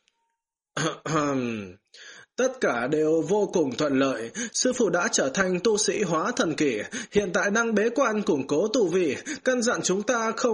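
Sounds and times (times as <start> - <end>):
light cough: 0.8 - 1.8
speech: 0.8 - 10.5.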